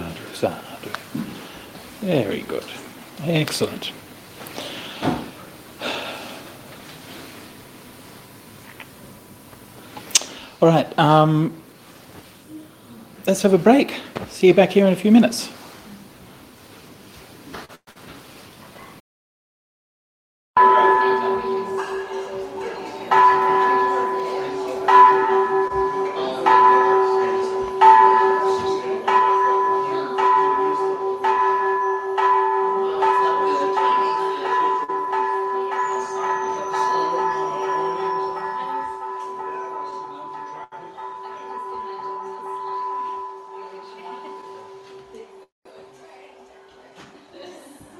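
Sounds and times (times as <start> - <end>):
speech: 0.4 - 0.6, 2.1 - 4.0, 10.6 - 11.6, 13.3 - 15.6
Buddhist temple bells ringing: 20.6 - 45.5.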